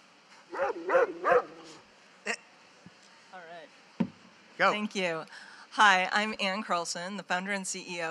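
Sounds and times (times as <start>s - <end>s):
dog barking: 0.5s - 1.8s
speech: 4.6s - 8.0s.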